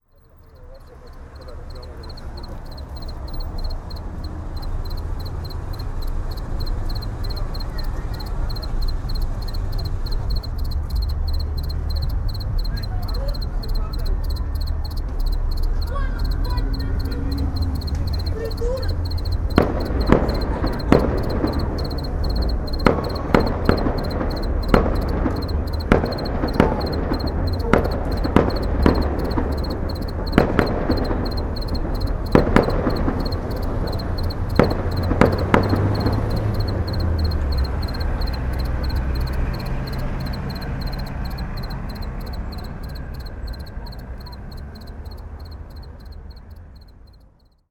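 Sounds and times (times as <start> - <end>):
cricket chirping in Sergiyev Posad: 0.0 - 47.6.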